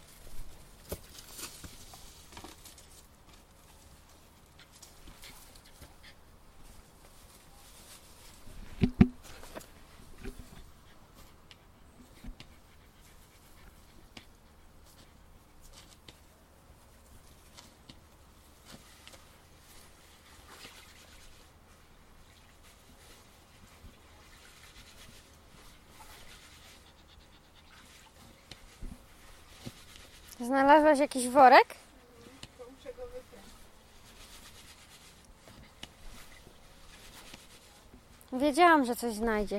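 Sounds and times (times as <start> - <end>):
light scratching and rustling: 0.0 - 39.5
dog panting on a garden plot: 10.6 - 15.6, 26.3 - 28.4
speech: 30.4 - 31.8, 38.5 - 39.5.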